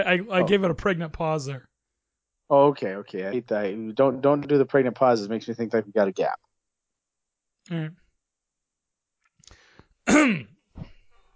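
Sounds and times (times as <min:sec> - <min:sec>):
speech: 0:00.0 - 0:01.7, 0:02.5 - 0:06.4, 0:07.7 - 0:08.0, 0:10.1 - 0:10.9
person clearing throat: 0:10.1 - 0:10.5.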